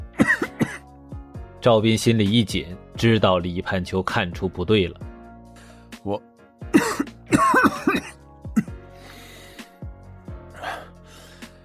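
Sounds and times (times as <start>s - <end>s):
man clearing his throat: 0.2s - 0.8s, 6.8s - 8.8s
smoker man with a phlegmy cough coughing: 0.2s - 0.9s, 6.7s - 8.8s
speech: 1.6s - 5.1s, 6.0s - 6.3s.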